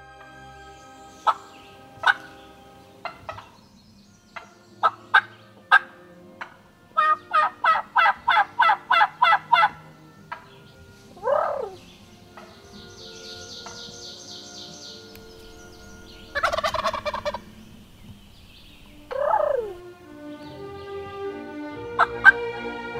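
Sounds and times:
wild turkey clucking: 0:01.2 - 0:03.6, 0:04.4 - 0:10.6, 0:11.2 - 0:11.8, 0:15.2 - 0:19.9, 0:21.9 - 0:22.6
wild turkey soft trilling purr: 0:06.4 - 0:09.8, 0:11.2 - 0:11.8, 0:15.2 - 0:19.9.

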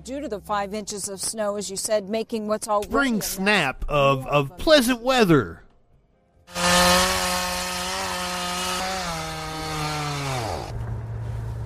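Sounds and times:
speech: 0:00.0 - 0:05.6
chainsaw cutting wood: 0:06.5 - 0:10.7.

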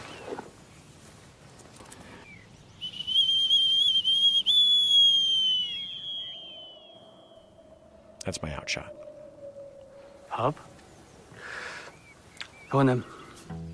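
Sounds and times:
falconer's hawking whistle full of dirt blown: 0:02.8 - 0:10.3
speech: 0:08.2 - 0:09.1, 0:10.4 - 0:10.7, 0:12.7 - 0:13.6.

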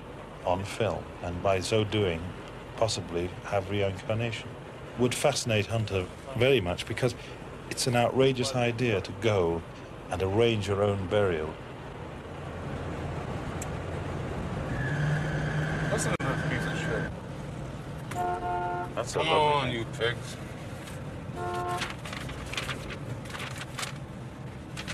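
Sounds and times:
steady rumble of heavy road traffic with many cars and trucks: 0:00.0 - 0:24.9
speech: 0:00.4 - 0:11.6, 0:19.1 - 0:20.5
blaring car horn honks: 0:18.1 - 0:19.5, 0:21.3 - 0:22.0.

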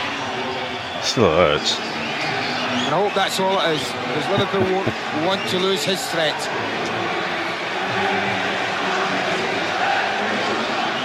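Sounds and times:
speech: 0:01.1 - 0:06.8, 0:08.0 - 0:08.3
large football stadium crowd roaring and murmuring: 0:04.3 - 0:11.0.

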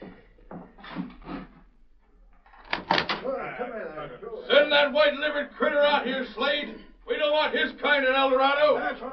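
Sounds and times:
door creaking and rattling: 0:02.4 - 0:03.2
door opening: 0:02.4 - 0:03.3
speech: 0:04.0 - 0:09.1.

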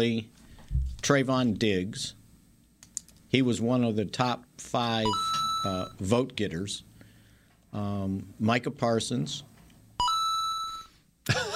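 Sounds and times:
speech: 0:00.0 - 0:00.4, 0:01.0 - 0:02.2, 0:03.3 - 0:06.9, 0:07.7 - 0:09.5, 0:11.2 - 0:11.5
sharp electronic alert from a phone: 0:05.1 - 0:05.9
phone beeping: 0:05.1 - 0:06.0, 0:10.0 - 0:11.0.

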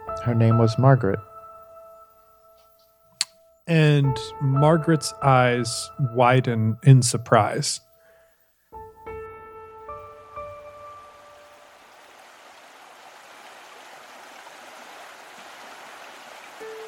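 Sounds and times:
speech: 0:00.2 - 0:01.3, 0:03.7 - 0:07.9
roar of rushing flooded river water: 0:11.5 - 0:16.8.

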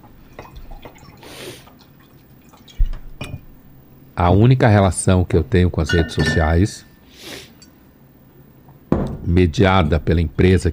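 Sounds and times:
water pouring into a glass: 0:00.3 - 0:03.2
glass clinking: 0:03.2 - 0:03.5, 0:05.8 - 0:07.0
speech: 0:04.2 - 0:06.9, 0:09.3 - 0:10.7.

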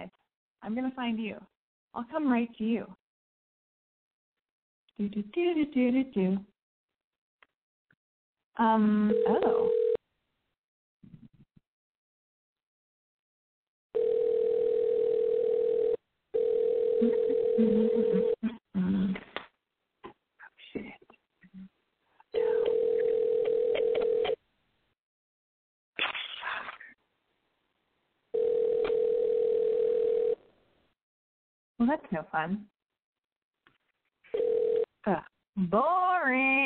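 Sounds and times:
speech: 0:00.6 - 0:03.0, 0:05.0 - 0:06.5, 0:08.6 - 0:09.8, 0:31.9 - 0:32.7, 0:35.0 - 0:36.6
telephone dial tone on call line: 0:09.1 - 0:10.0, 0:14.0 - 0:18.4, 0:22.4 - 0:24.4, 0:28.4 - 0:30.4, 0:34.4 - 0:34.9.

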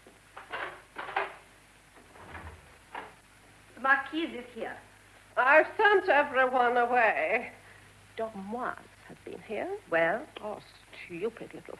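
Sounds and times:
wooden door clunking as it is opened: 0:00.4 - 0:03.2
speech: 0:03.8 - 0:07.6, 0:08.2 - 0:11.7.

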